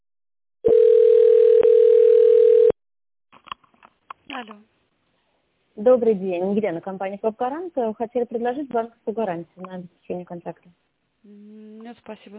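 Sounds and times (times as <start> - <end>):
telephone line clicks and beeps during office call transfer: 0.7 - 2.7
speech: 5.9 - 12.3.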